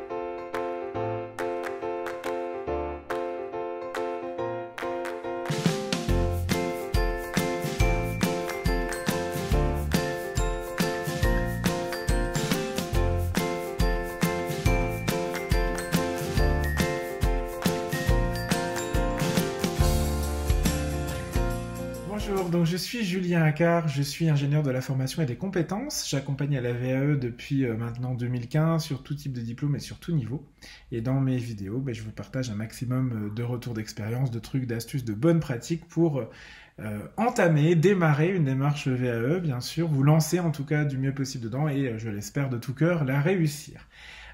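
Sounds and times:
podcast intro instrumental theme tune: 0:00.0 - 0:22.6
speech: 0:22.3 - 0:44.3.

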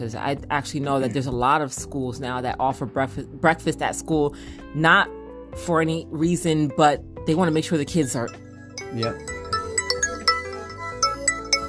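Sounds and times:
speech: 0:00.0 - 0:09.3
mobile phone ringtone playing a bright chiming melody: 0:07.6 - 0:11.6.

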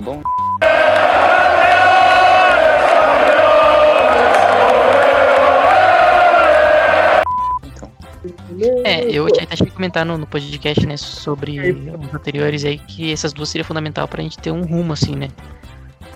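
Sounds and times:
speech: 0:00.0 - 0:00.4, 0:09.1 - 0:15.7
huge stadium crowd chanting champions in unison: 0:00.6 - 0:07.2.

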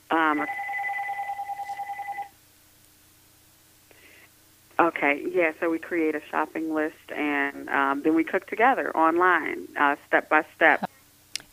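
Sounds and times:
electronic tone from a phone being turned off: 0:00.1 - 0:02.4
speech: 0:00.3 - 0:00.7, 0:05.1 - 0:10.8.

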